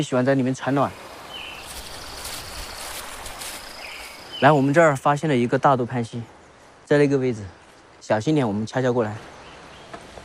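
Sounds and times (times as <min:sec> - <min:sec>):
speech: 0:00.0 - 0:01.1, 0:04.4 - 0:09.3
water flowing from a mountain stream at about 1800 metres altitude: 0:00.0 - 0:05.0.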